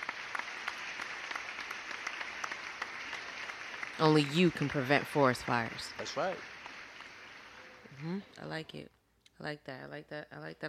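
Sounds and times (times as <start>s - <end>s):
round of applause from a group: 0.0s - 8.2s
speech: 4.0s - 6.5s, 8.0s - 10.6s.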